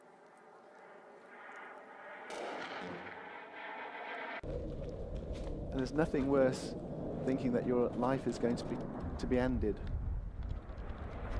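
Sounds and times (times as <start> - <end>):
rockets firing in a war zone: 0.8 - 6.7, 8.2 - 11.3
speech: 5.7 - 10.0.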